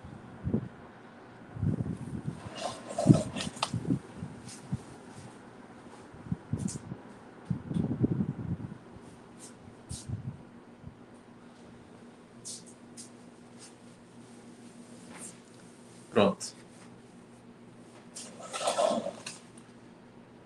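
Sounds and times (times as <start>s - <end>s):
electric fan running: 0.0s - 20.4s
moving air from fan buffeting the microphone: 1.5s - 4.9s, 6.2s - 8.8s.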